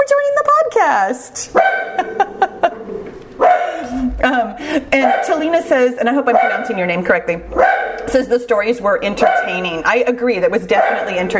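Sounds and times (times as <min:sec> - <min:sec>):
speech: 0:00.2 - 0:02.2, 0:04.2 - 0:11.3
dog barking: 0:01.5 - 0:02.4, 0:03.4 - 0:03.8, 0:05.0 - 0:05.5, 0:06.3 - 0:06.8, 0:07.5 - 0:08.1, 0:09.2 - 0:09.7, 0:10.7 - 0:11.3
laughter: 0:01.8 - 0:05.4.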